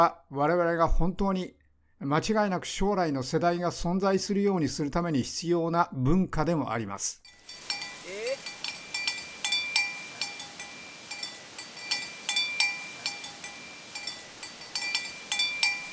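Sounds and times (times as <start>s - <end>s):
speech: 0.0s - 7.4s
metal cowbells clanking on herded cattle: 7.3s - 15.9s.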